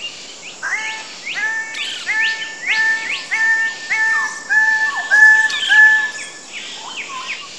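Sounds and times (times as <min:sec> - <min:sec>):
soft hiss: 0:00.0 - 0:07.5
bird whistling calls in jungle: 0:00.6 - 0:07.5.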